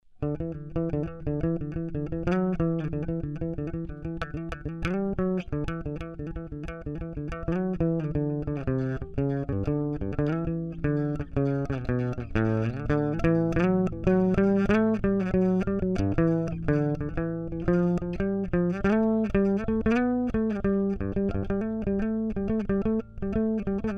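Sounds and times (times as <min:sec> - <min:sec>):
bass phrases: 0:00.2 - 0:23.9.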